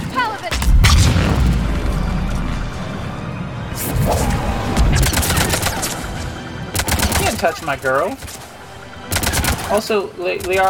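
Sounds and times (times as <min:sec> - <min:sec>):
psychic power attack blasts in a video game: 0:00.5 - 0:06.8
low rumble of video game battle noise: 0:00.6 - 0:06.7
speech: 0:07.4 - 0:08.4, 0:09.7 - 0:10.6.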